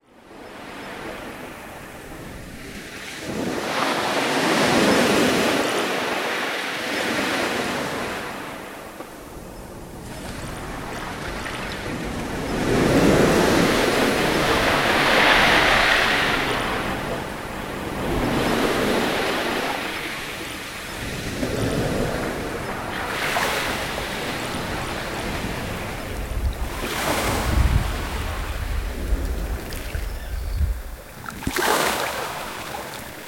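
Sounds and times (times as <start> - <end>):
ocean waves: 0.1 - 33.2.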